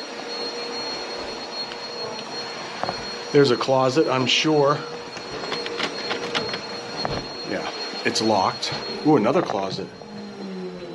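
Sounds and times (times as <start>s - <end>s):
vacuum cleaner run on the stairs of an old hotel: 0.0s - 10.9s
speech: 3.3s - 5.0s, 8.0s - 10.0s.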